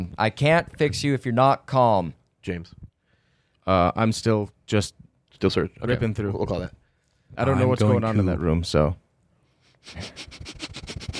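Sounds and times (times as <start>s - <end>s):
speech: 0.2s - 2.8s, 3.7s - 9.0s, 9.8s - 10.7s
person sniffing: 9.6s - 11.1s.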